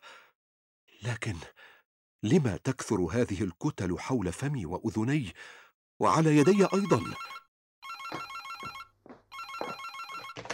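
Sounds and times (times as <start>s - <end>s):
speech: 1.0s - 7.4s
telephone ringing with a warbling electronic tone: 6.4s - 10.5s.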